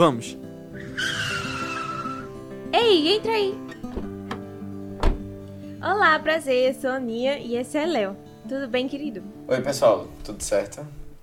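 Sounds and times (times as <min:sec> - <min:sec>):
speech: 0:00.0 - 0:00.4, 0:02.7 - 0:04.1, 0:05.8 - 0:11.0
car braking hard with tire squeal: 0:00.8 - 0:02.4.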